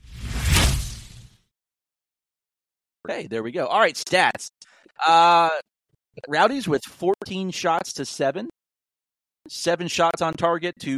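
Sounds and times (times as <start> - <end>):
whoosh transition effect: 0.0 - 1.3
speech: 3.0 - 8.6, 9.5 - 10.9.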